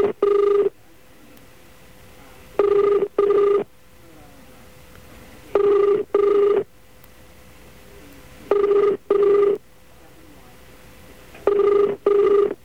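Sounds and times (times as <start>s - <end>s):
telephone ringing tone in double bursts: 0.0s - 0.7s, 2.6s - 3.7s, 5.6s - 6.7s, 8.5s - 9.6s, 11.4s - 12.6s.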